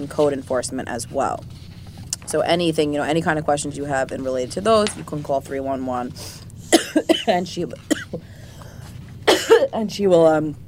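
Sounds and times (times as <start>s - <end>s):
speech: 0.0s - 1.7s, 2.3s - 8.3s, 9.7s - 10.6s
woman coughing with something caught in her throat: 6.6s - 8.3s, 9.2s - 9.8s.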